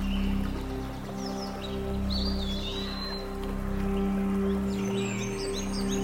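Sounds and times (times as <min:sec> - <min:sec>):
flowing stream water in a forest: 0:00.0 - 0:06.0.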